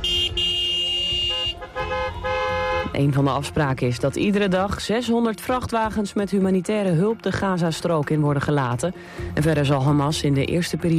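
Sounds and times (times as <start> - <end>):
car horns honking in celebration of a Gaza ceasefire: 0.0 - 3.7
low rumble of traffic: 0.0 - 5.1
speech: 3.0 - 10.9.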